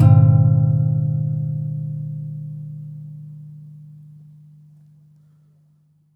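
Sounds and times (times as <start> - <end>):
classical guitar marimba hit extended technique: 0.0 - 4.2.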